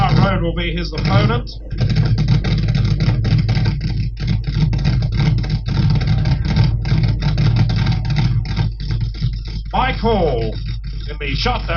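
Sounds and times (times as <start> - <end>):
funny car drag racing engine starting and revving: 0.0 - 11.7
speech: 0.4 - 2.3, 9.8 - 11.7.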